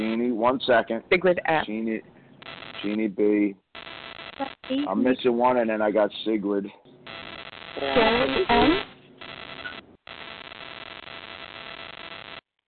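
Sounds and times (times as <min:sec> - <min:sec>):
hissing static on a telephone line: 0:00.0 - 0:00.4, 0:02.3 - 0:05.1, 0:07.0 - 0:12.4
voice on a telephone line: 0:00.0 - 0:00.6, 0:02.8 - 0:03.5, 0:07.8 - 0:08.8
speech: 0:00.4 - 0:03.6, 0:04.4 - 0:06.8, 0:07.8 - 0:08.9.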